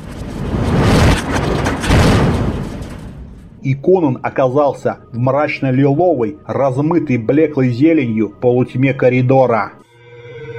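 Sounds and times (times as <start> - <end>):
heavy double doors in a fortress slamming shut with a dull thud: 1.3 - 3.4
speech: 3.6 - 9.8.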